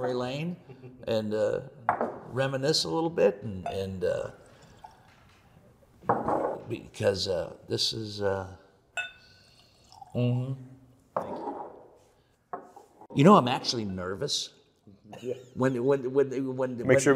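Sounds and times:
speech: 0:00.0 - 0:04.4, 0:06.1 - 0:08.6, 0:10.1 - 0:10.7, 0:13.2 - 0:17.1
drinks being poured into glasses: 0:03.8 - 0:05.5, 0:09.0 - 0:10.4
light glassy clinks: 0:09.0 - 0:09.5.

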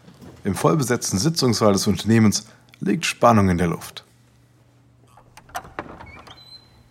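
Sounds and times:
speech: 0:00.4 - 0:04.1
door being pushed shut and latching indoors: 0:05.1 - 0:06.8.

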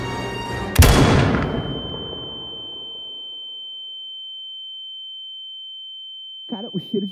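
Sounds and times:
gunshot sound effect of a shot fired at a book in a basement: 0:00.8 - 0:02.9.

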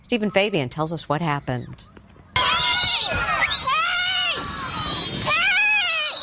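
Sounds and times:
speech: 0:00.1 - 0:02.0
terrified children screaming on a school bus: 0:02.4 - 0:06.2.

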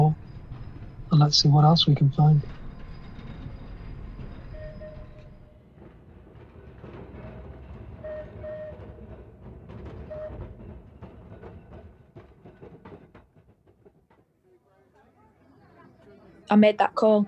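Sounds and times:
tram rumbling along its rails: 0:00.0 - 0:14.1
tram wheels clacking: 0:00.0 - 0:14.2
speech: 0:01.2 - 0:02.6, 0:16.5 - 0:17.2
voices murmuring: 0:14.5 - 0:17.2.

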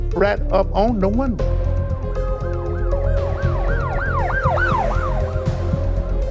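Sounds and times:
speech: 0:00.2 - 0:01.6
ambulance siren wailing in rise-and-fall sweeps: 0:02.7 - 0:06.2.

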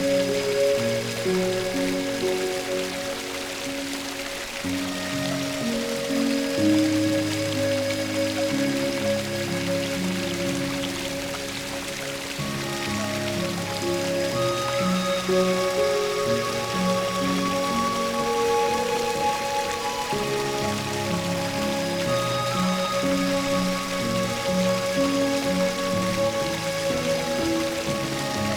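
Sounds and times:
running stream water: 0:00.0 - 0:28.5
soft low music with slow sustained notes: 0:00.0 - 0:28.5.

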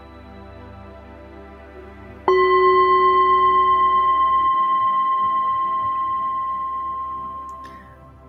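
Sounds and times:
meditation bell struck and ringing: 0:02.3 - 0:08.0.

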